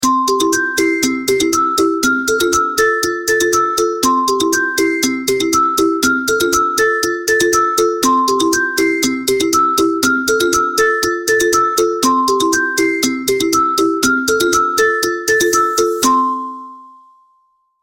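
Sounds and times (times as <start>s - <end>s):
kids alarm ringtone: 0.0s - 17.2s.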